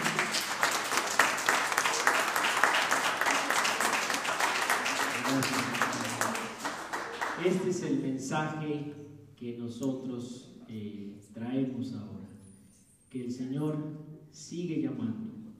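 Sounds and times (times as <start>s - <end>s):
crowd applauding for a choir: 0.0s - 7.7s
speech: 7.4s - 12.2s, 13.2s - 15.3s.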